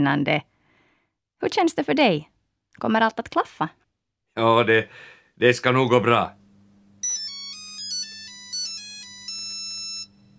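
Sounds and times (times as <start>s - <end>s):
speech: 0.0s - 0.5s, 1.4s - 3.8s, 4.4s - 6.4s
phone ringtone with bright electronic notes: 7.0s - 10.3s.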